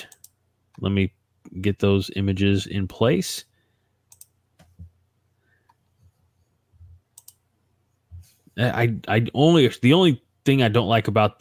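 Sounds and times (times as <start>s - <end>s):
speech: 0.8s - 3.5s, 8.6s - 11.3s
crisp mouse clicks: 4.1s - 4.8s, 7.1s - 7.4s.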